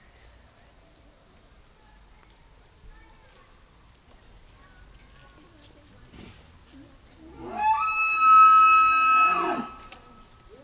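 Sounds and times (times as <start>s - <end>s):
male Tule elk Cervus elaphus nannodes bugling: 7.5s - 9.9s.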